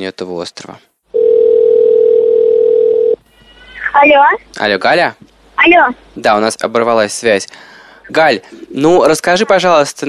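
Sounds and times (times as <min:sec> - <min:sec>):
speech: 0:00.0 - 0:00.9, 0:03.9 - 0:10.0
telephone dial tone while placing a call: 0:01.2 - 0:03.2.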